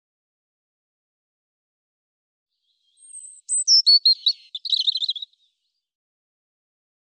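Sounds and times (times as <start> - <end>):
European robin singing: 2.6 - 5.8.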